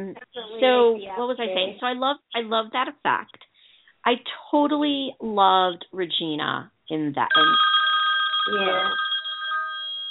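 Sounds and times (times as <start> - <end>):
speech: 0.0 - 3.4, 4.0 - 7.8, 8.5 - 9.1
telephone ringing with bright electronic tone: 7.3 - 10.0.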